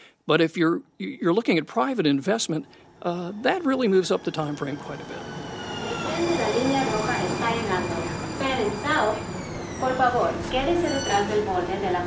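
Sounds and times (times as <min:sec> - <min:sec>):
speech: 0:00.3 - 0:05.4, 0:09.8 - 0:12.0
light rail train rolling into a station: 0:01.2 - 0:12.0
light rail train high-pitched electric whine: 0:02.0 - 0:12.0
light rail train brief squealing tones: 0:05.2 - 0:11.6.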